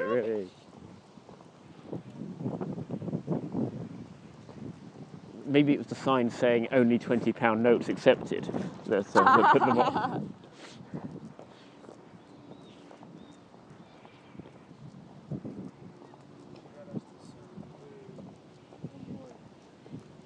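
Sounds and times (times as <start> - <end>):
horse hooves clip-clopping at a walk: 0.0 - 5.5, 9.5 - 20.2
wind: 0.0 - 20.2
speech: 5.5 - 11.1
laughter: 9.1 - 10.3.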